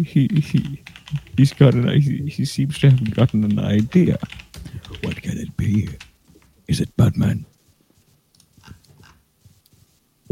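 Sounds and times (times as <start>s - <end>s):
speech: 0.0s - 6.0s, 6.7s - 7.5s
typing on computer keyboard: 0.3s - 2.0s, 2.7s - 6.5s.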